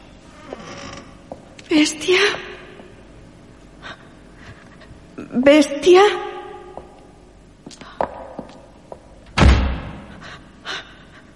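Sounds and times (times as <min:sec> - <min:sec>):
speech: 0:01.7 - 0:02.5, 0:05.4 - 0:06.3
heavy door slamming shut: 0:09.3 - 0:10.2.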